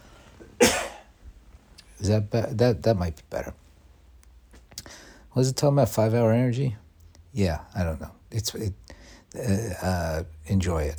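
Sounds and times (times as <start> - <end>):
person with a cough clearing throat: 0.6 - 1.1
speech: 2.0 - 3.6, 5.4 - 6.8, 7.4 - 10.9.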